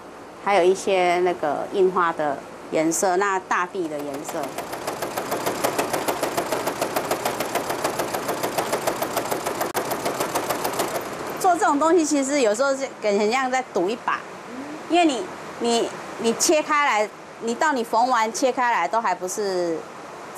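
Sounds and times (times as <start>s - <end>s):
person talking: 0.5s - 4.6s, 11.4s - 19.8s
sewing machine stitching fabric with needle tapping: 3.8s - 11.5s.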